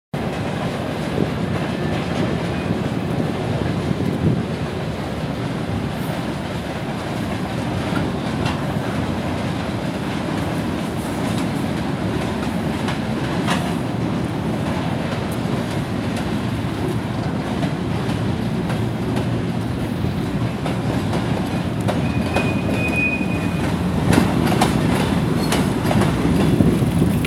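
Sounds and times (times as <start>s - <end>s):
train: 0.1s - 27.2s.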